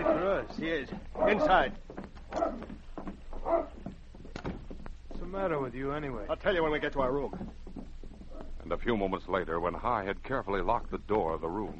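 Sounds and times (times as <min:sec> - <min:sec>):
dog barking on a town street: 0:00.0 - 0:00.4, 0:01.2 - 0:01.6, 0:02.3 - 0:02.8, 0:03.4 - 0:03.8
speech: 0:00.4 - 0:02.4, 0:03.5 - 0:03.8, 0:05.3 - 0:07.6, 0:08.7 - 0:11.7.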